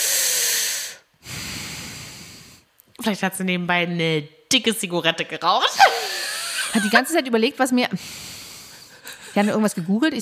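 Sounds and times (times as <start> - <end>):
person imitating heavy deep breathing: 0.0 - 2.7, 8.0 - 9.4
speech: 3.0 - 6.0, 6.7 - 8.2, 9.4 - 10.2.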